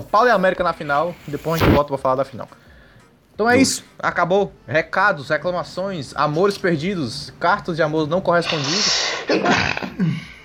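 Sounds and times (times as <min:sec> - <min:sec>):
speech: 0:00.1 - 0:02.7, 0:03.4 - 0:10.3
person sneezing: 0:08.4 - 0:10.2.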